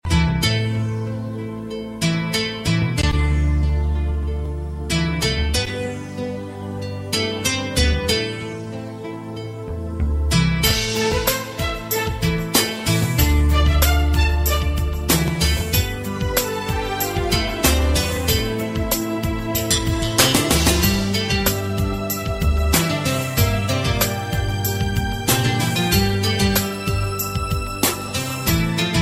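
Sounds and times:
cool guitar theme: 0:00.0 - 0:29.0.

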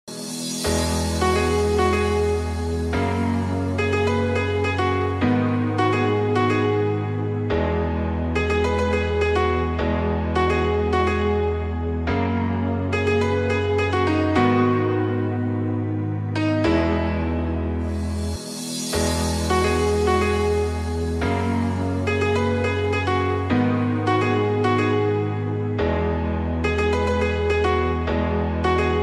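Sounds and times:
piano jam: 0:00.0 - 0:29.0.

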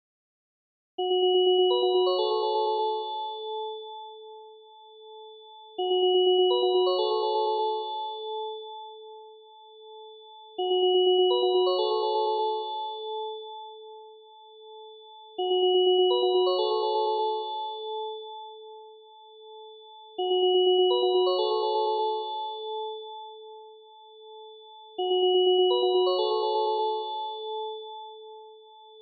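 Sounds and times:
bell ringtone: 0:01.0 - 0:04.2, 0:05.7 - 0:09.0, 0:10.5 - 0:13.8, 0:14.8 - 0:18.6, 0:19.6 - 0:23.4, 0:24.4 - 0:29.0.

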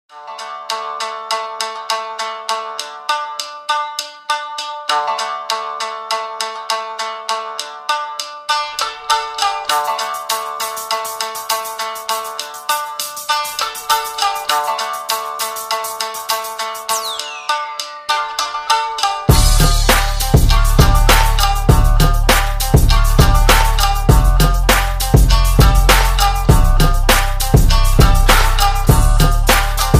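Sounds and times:
koto: 0:00.1 - 0:29.9.

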